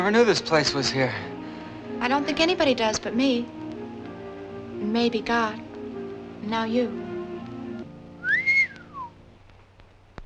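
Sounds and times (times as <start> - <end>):
speech: 0.0 - 1.3, 2.0 - 3.6, 4.8 - 5.7, 6.4 - 7.0
person whistling: 8.2 - 9.2.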